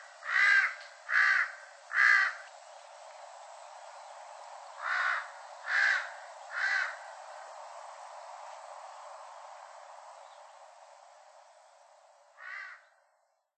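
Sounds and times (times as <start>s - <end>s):
steady background hiss: 0.0s - 13.5s
large-billed crow cawing on Ishigaki Island: 0.2s - 2.4s, 4.8s - 7.1s, 12.3s - 13.0s.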